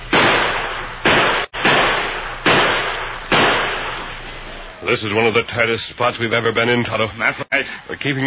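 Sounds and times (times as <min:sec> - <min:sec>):
loud sharp gunshots in a gunfire exchange: 0:00.0 - 0:04.7
speech: 0:04.9 - 0:08.2.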